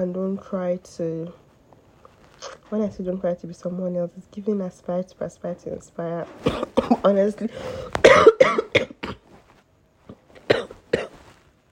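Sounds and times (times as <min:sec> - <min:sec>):
speech: 0:00.0 - 0:01.4, 0:02.4 - 0:08.8
person coughing: 0:06.4 - 0:07.1, 0:08.0 - 0:09.3, 0:10.4 - 0:11.2.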